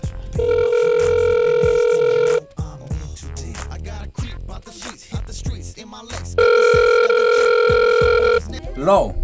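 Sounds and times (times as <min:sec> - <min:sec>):
telephone ringback tone on an outgoing call: 0:00.4 - 0:02.4, 0:06.4 - 0:08.4
speech: 0:08.9 - 0:09.2.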